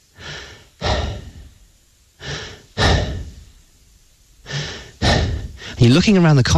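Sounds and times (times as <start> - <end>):
ball kid panting heavily on a tennis court: 0.2 - 1.5, 2.2 - 3.4, 4.5 - 5.8
speech: 5.8 - 6.5.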